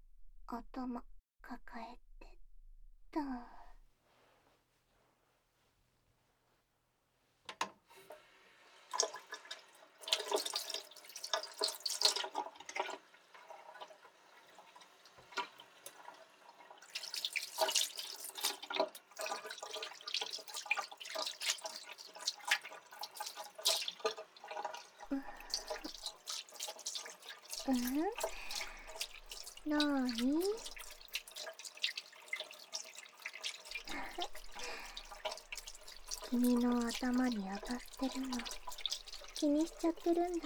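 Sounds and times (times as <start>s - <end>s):
speech: 0.5s - 2.0s, 3.1s - 3.6s, 37.3s - 38.6s, 39.4s - 40.4s
tap water splashing while shampoo is rinsed out of hair: 8.9s - 14.0s, 14.8s - 16.2s, 16.8s - 40.4s.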